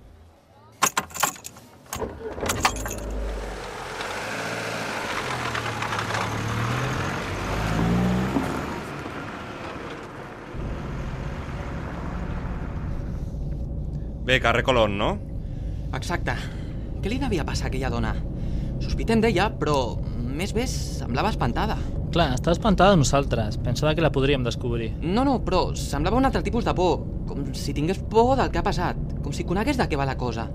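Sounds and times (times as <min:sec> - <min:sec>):
keys jangling and clattering: 0:00.8 - 0:01.6, 0:02.5 - 0:03.2
car engine starting: 0:01.9 - 0:30.5
speech: 0:14.3 - 0:15.2, 0:16.0 - 0:18.3, 0:18.9 - 0:30.5.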